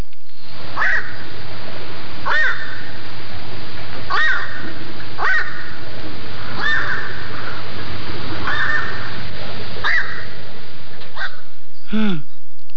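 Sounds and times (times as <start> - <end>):
black-crowned night heron croaking: 0.8 - 1.3, 2.2 - 3.0, 4.0 - 11.5.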